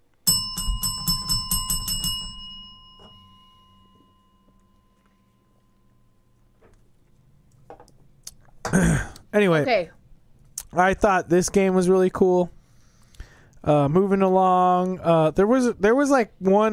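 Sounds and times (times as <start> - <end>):
bright bell struck: 0.2 - 6.7
speech: 8.8 - 10.0, 10.8 - 12.6, 13.6 - 16.7.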